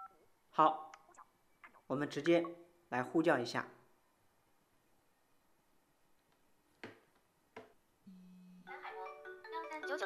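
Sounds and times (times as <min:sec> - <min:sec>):
speech: 0:00.6 - 0:00.9, 0:01.9 - 0:03.8
mobile phone low buzz: 0:08.1 - 0:08.8
mobile phone incoming call ringtone melody: 0:08.6 - 0:10.0.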